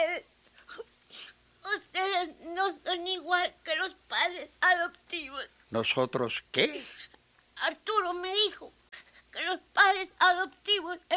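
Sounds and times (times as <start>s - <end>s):
child crying in whimpers and wails: 0.0s - 5.5s, 7.6s - 8.7s, 9.4s - 11.1s
speech: 2.6s - 8.8s, 9.4s - 11.1s.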